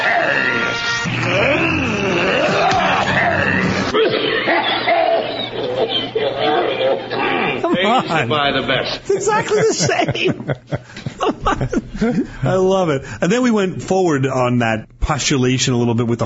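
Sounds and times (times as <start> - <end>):
deep warbling creature voice made from a slowed-down cough: 0.0 - 7.7
laughter: 0.0 - 12.6
speech: 8.0 - 16.2.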